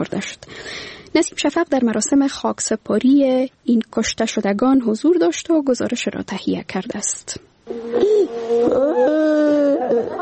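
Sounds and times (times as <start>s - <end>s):
speech: 0.0s - 10.1s
mother wailing and sobbing in mourning for her son: 7.7s - 10.1s.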